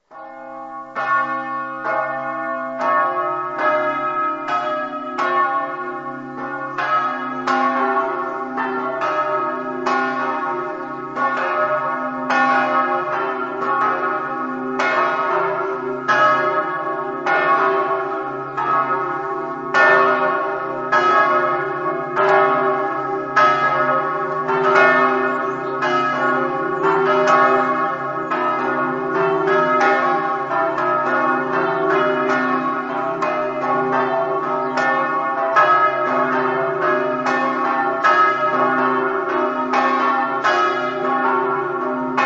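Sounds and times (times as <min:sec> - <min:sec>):
bells ringing in Caneva: 0:00.0 - 0:42.2.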